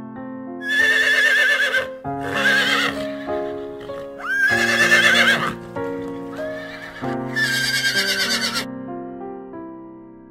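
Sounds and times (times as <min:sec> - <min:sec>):
horses neighing with shrill whinnies: 0:00.6 - 0:08.7.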